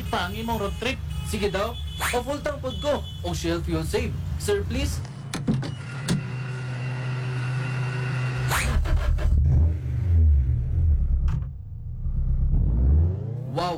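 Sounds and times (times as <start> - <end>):
speech: 0.1 - 5.1
car engine drone driving fast: 4.1 - 13.7.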